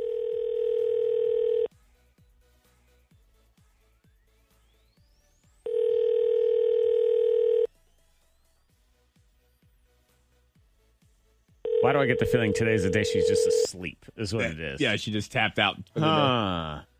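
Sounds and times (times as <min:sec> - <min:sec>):
telephone dial tone: 0:00.0 - 0:01.7, 0:05.7 - 0:07.7, 0:11.7 - 0:13.7
speech: 0:11.9 - 0:16.9.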